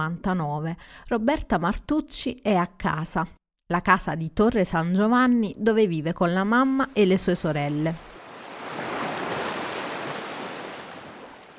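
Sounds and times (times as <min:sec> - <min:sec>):
speech: 0:00.0 - 0:08.1
Ionian Sea waves washing onto the shore at Marina di Ugento in Salento, Italy: 0:07.7 - 0:11.5.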